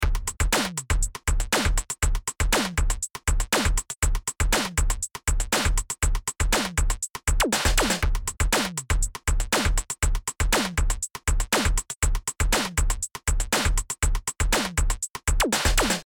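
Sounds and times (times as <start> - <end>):
drums: 0.0 - 16.0.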